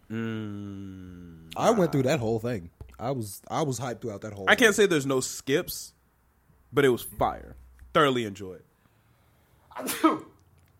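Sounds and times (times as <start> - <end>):
speech: 0.1 - 0.7, 1.6 - 6.0, 6.7 - 8.7, 9.8 - 10.3
sneeze: 9.7 - 10.4.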